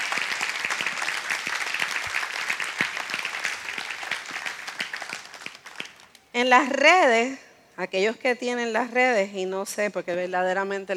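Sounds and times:
large gathering applauding: 0.0 - 6.1
speech: 6.4 - 10.9.

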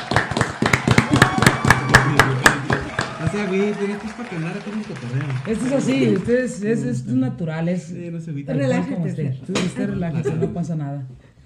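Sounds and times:
small group clapping for guests: 0.0 - 6.6
speech: 3.4 - 11.2.

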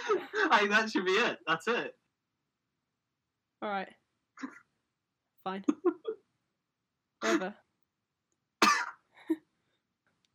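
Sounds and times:
speech: 0.5 - 2.0, 3.6 - 4.6, 5.4 - 6.2, 7.2 - 7.6
single sharp cough: 4.4 - 4.6, 7.2 - 7.4, 8.6 - 9.0
softer throat-clearing grunt: 4.4 - 4.6.

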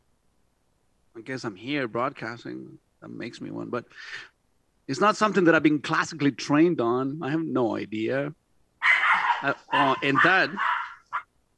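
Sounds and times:
speech: 1.2 - 4.3, 4.9 - 8.4, 9.4 - 10.7
protective dog yelping barks and whine-like cries: 8.8 - 11.3.

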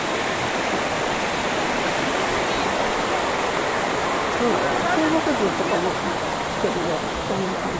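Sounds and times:
rushing water of a nearby stream: 0.0 - 7.7
speech: 4.4 - 7.7.

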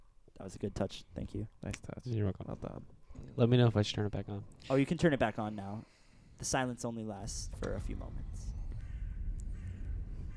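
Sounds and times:
speech: 0.4 - 8.5
raven cawing: 8.5 - 10.3.

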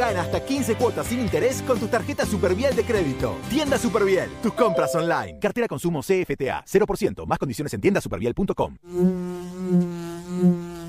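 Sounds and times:
speech: 0.0 - 10.6
insect buzz with a bright droning hum: 8.9 - 10.8.

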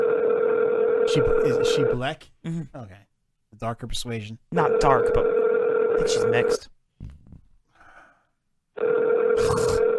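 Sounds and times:
phone line ringback tone on an outgoing call: 0.0 - 1.9, 4.7 - 6.6, 8.8 - 9.9
speech: 1.1 - 7.1.

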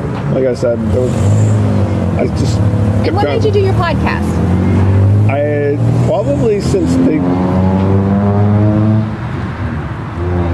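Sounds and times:
speech: 0.4 - 4.6, 5.3 - 8.1
loud car driving past on road: 0.7 - 10.5.

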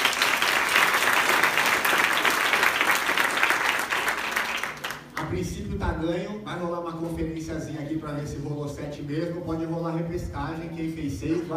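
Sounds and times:
crowd at a meeting applauding: 0.0 - 5.3
speech: 5.4 - 11.5.

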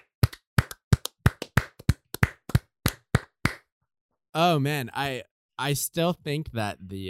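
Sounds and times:
sharp hand claps: 0.0 - 3.7
speech: 4.4 - 7.0.

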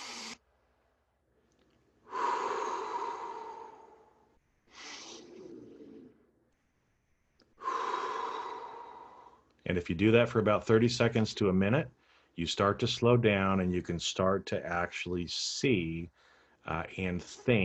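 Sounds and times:
slow deep breathing used to calm down: 2.0 - 6.3, 7.6 - 9.6, 12.0 - 12.4, 16.1 - 16.6
speech: 9.7 - 17.6.

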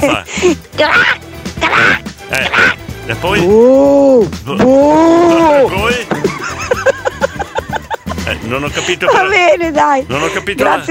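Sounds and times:
speech: 0.0 - 6.0, 8.5 - 10.8
person imitating a bullfrog croak: 0.8 - 2.8
laughter: 5.8 - 9.2.

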